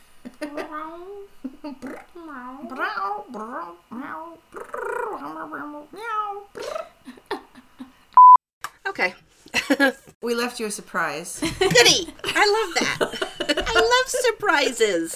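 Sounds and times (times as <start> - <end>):
cat meowing: 0.4 - 6.9
speech: 1.6 - 3.8, 9.0 - 13.3, 14.1 - 15.1
laughter: 11.4 - 15.1.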